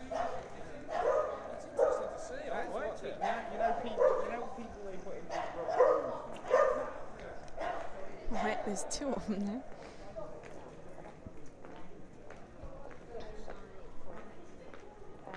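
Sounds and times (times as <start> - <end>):
dog barking with yips and whines: 0.0 - 2.2, 3.2 - 4.5, 5.3 - 8.7
steady murmur: 0.0 - 15.3
speech: 8.7 - 9.9.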